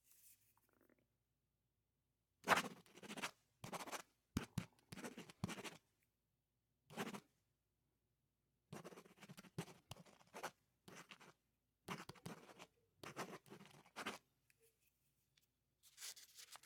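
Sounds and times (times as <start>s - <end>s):
pen writing on a pad: 2.5s - 5.8s, 6.9s - 7.3s, 8.7s - 14.2s
pen scribbling on a pad: 5.0s - 5.8s, 8.8s - 14.2s.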